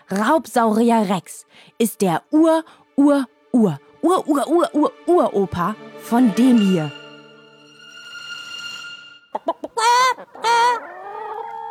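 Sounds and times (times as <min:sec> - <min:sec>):
speech: 0:00.1 - 0:07.0
chicken clucking: 0:09.3 - 0:11.6.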